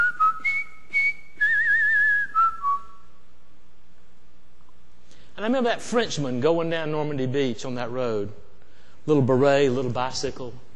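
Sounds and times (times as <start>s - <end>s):
person whistling a military march melody: 0.0s - 3.0s
speech: 5.4s - 8.4s, 9.0s - 10.6s.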